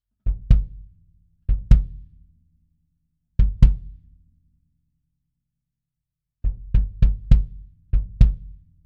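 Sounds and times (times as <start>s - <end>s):
bass-heavy dynamic kick drum: 0.2s - 2.3s, 3.4s - 4.2s, 6.4s - 8.8s.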